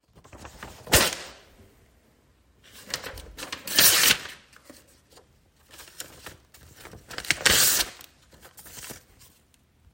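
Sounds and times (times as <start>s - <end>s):
paper tearing: 2.9s - 4.4s, 6.8s - 8.1s.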